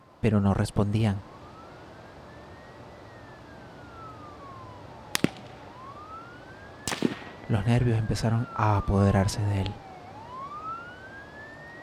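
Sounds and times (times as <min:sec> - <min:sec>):
police siren wailing: 0:00.0 - 0:11.8
speech: 0:00.2 - 0:01.3, 0:07.5 - 0:09.8
sharp gunshot-like cracks: 0:05.1 - 0:05.8, 0:06.8 - 0:07.6.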